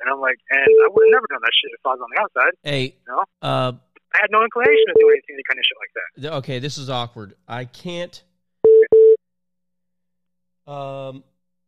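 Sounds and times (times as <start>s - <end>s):
speech: 0.1s - 8.3s, 10.7s - 11.3s
call-waiting beeps on a phone line: 0.5s - 1.4s, 4.6s - 5.6s, 8.6s - 9.2s.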